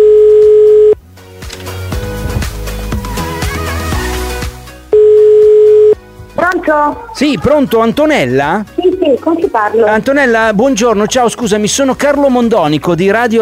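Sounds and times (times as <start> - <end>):
telephone ringback tone during a live radio program: 0.0 - 1.0, 4.9 - 6.0
music playing: 1.0 - 13.4
speech: 6.8 - 13.4.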